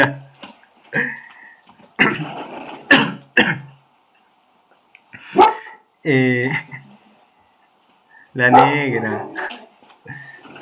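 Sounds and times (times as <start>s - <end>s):
speech: 0.0s - 0.2s, 6.0s - 6.7s, 8.4s - 10.2s
dog barking: 5.3s - 5.8s.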